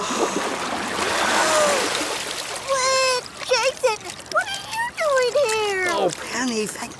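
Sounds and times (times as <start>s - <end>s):
water splashing and sloshing as a person surfaces from underwater: 0.0s - 6.9s
brief voices: 2.6s - 6.9s.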